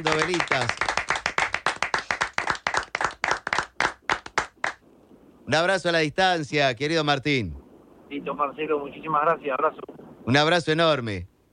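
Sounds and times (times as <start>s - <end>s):
speech: 0.0s - 0.9s, 5.5s - 11.5s
small group applauding: 0.0s - 4.8s.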